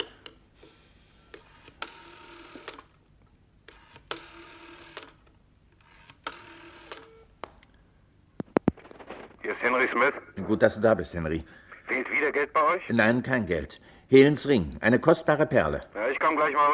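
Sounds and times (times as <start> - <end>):
telephone dial whirring: 0.0 - 3.0, 3.7 - 7.3
speech: 9.6 - 11.7, 12.3 - 16.7.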